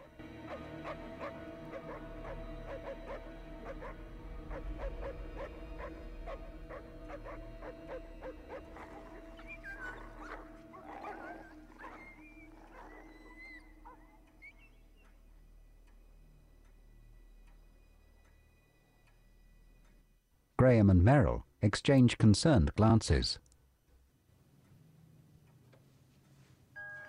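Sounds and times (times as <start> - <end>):
several distant dogs barking and yipping: 0.0 - 16.5
speech: 0.5 - 6.5, 20.6 - 23.5.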